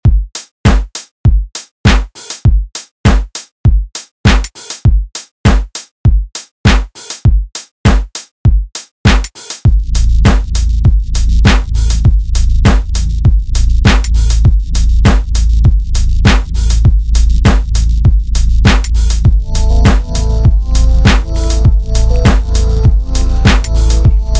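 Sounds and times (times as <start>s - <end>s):
kick drum: 0.0s - 24.3s
modulated bass: 9.7s - 24.3s.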